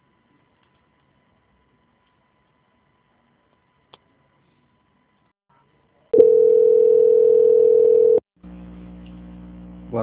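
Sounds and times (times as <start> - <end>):
steady telephone line tone during a call transfer: 6.2 - 8.6
quieter lower hum: 8.4 - 10.0.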